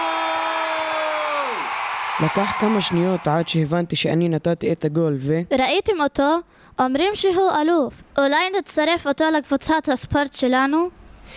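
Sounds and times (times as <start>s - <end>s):
crowd cheering: 0.0s - 3.9s
speech: 2.2s - 11.3s.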